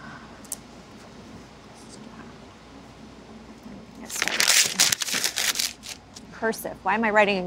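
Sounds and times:
paper crumpling: 0:04.0 - 0:06.0
speech: 0:06.4 - 0:07.4.

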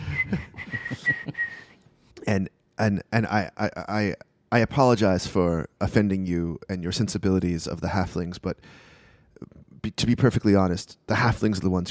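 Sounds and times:
person whistling short high notes: 0:00.0 - 0:01.8
speech: 0:00.3 - 0:00.5, 0:02.3 - 0:11.8.

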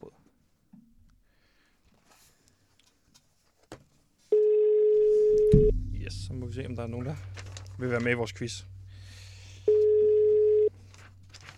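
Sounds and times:
telephone ringing tone: 0:04.3 - 0:05.6, 0:09.7 - 0:10.7
low hum: 0:05.2 - 0:11.5
speech: 0:06.3 - 0:08.8.

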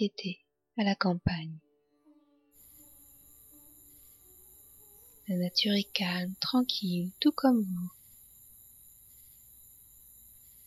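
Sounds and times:
speech: 0:00.0 - 0:01.6, 0:05.3 - 0:08.0
crickets chirping on a summer night in the countryside: 0:02.6 - 0:10.6.

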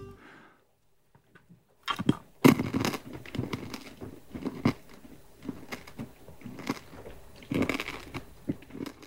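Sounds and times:
mouth smacking sounds: 0:01.3 - 0:09.0
wet chewing of a whole piece of food in the mouth: 0:01.8 - 0:09.0.

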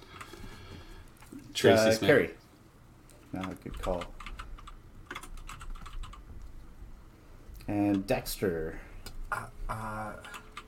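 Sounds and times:
speech: 0:01.6 - 0:02.4, 0:03.3 - 0:04.2, 0:07.7 - 0:10.4
typing on a computer keyboard: 0:03.4 - 0:06.2, 0:10.0 - 0:10.6.

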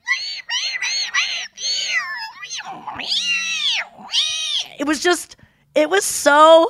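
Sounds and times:
voice imitating underwater whale calls: 0:00.0 - 0:04.8
speech: 0:04.8 - 0:06.6.

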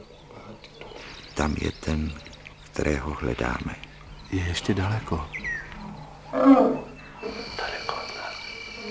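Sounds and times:
faint quieter animal noise: 0:00.0 - 0:08.8
speech: 0:01.4 - 0:05.4, 0:06.3 - 0:06.8
agitated bull elephant rumbling growl: 0:05.8 - 0:07.6.

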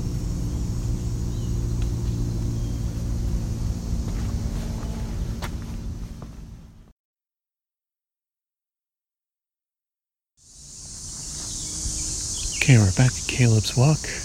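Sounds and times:
cicadas buzzing: 0:00.0 - 0:06.9, 0:10.4 - 0:14.2
outdoor noise: 0:00.0 - 0:06.9, 0:10.4 - 0:14.2
speech: 0:12.7 - 0:14.2.

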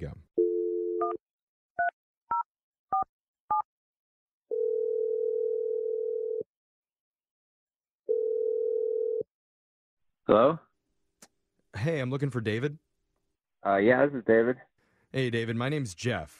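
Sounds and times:
speech: 0:00.0 - 0:00.2, 0:10.3 - 0:10.7, 0:11.8 - 0:12.8, 0:13.6 - 0:16.3
telephone dial tone: 0:00.4 - 0:01.2, 0:04.5 - 0:06.5, 0:08.1 - 0:09.3
telephone ringback tones on the line: 0:04.5 - 0:06.4, 0:08.1 - 0:09.2.

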